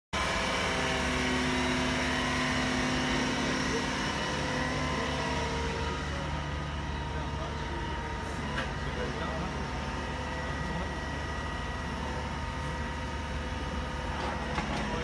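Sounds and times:
drilling rig: 0:00.2 - 0:15.0.

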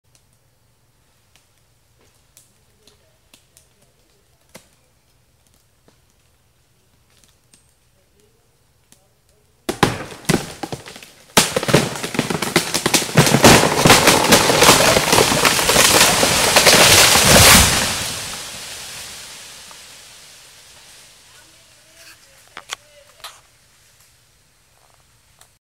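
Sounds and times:
tree falling: 0:09.7 - 0:23.3.

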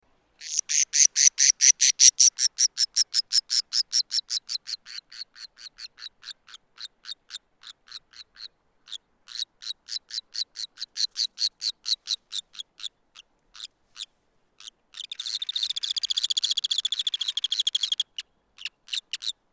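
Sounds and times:
white-bellied cinclodes calling: 0:00.4 - 0:04.1, 0:15.0 - 0:19.3.

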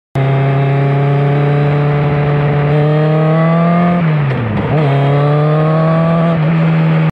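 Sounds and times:
T-Rex motorcycle: 0:00.2 - 0:07.1.

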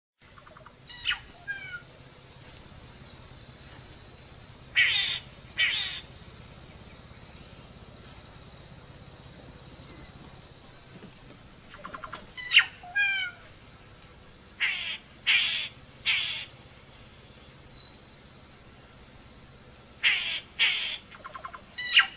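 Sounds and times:
solitary cacique calling: 0:00.2 - 0:02.9, 0:04.7 - 0:08.7, 0:11.1 - 0:13.8, 0:14.6 - 0:18.1, 0:19.8 - 0:22.1.

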